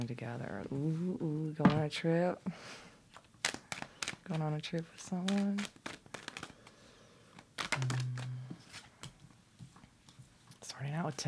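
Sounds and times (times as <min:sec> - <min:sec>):
speech: 0:00.0 - 0:02.8, 0:04.3 - 0:06.0, 0:07.8 - 0:08.2, 0:10.8 - 0:11.2
tarot cards riffling: 0:03.1 - 0:09.2
deck of tarot cards being shuffled: 0:03.1 - 0:10.2.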